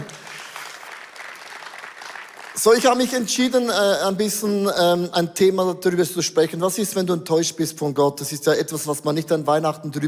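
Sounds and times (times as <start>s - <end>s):
audience clapping: 0.0s - 3.4s
speech: 2.6s - 10.0s.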